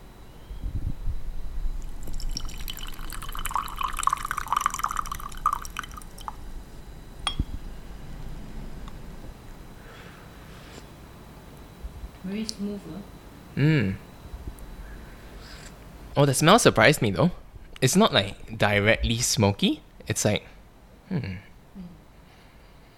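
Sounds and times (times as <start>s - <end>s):
tea pouring into a cup: 1.8s - 6.4s
speech: 12.4s - 14.1s, 16.2s - 20.5s, 21.1s - 21.5s.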